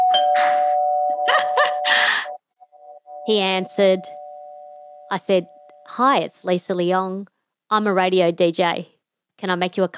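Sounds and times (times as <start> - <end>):
electronic doorbell ringing: 0.0 - 6.2
speech: 3.2 - 4.2, 5.1 - 9.9.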